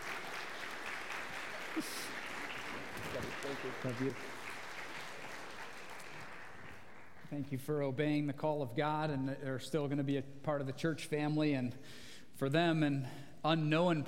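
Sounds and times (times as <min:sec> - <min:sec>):
large congregation applauding: 0:00.0 - 0:07.3
speech: 0:01.8 - 0:02.1, 0:03.2 - 0:04.4, 0:07.3 - 0:14.0.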